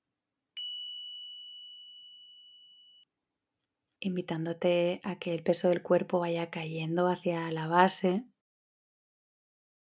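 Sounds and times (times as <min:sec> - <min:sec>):
single clear high meditation bell tone: 0:00.6 - 0:03.1
speech: 0:04.0 - 0:08.3.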